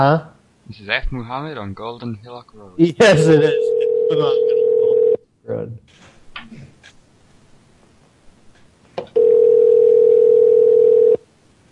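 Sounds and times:
speech: 0.0s - 4.8s, 5.5s - 6.7s
telephone ringing tone: 3.4s - 5.2s, 9.2s - 11.2s.

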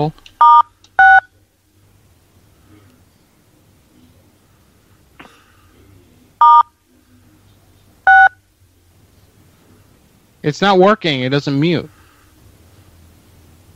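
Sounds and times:
speech: 0.0s - 0.3s, 10.4s - 12.0s
faint low hum: 0.0s - 13.7s
telephone keypad tones dialing star six: 0.4s - 1.3s, 6.4s - 6.7s, 8.1s - 8.4s
faint murmur: 1.3s - 10.4s.

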